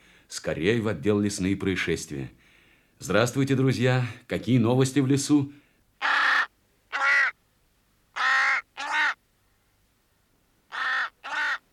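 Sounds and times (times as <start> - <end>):
speech: 0.3 - 2.4, 3.0 - 6.1
raven cawing: 6.0 - 7.4, 8.1 - 9.2, 10.7 - 11.7.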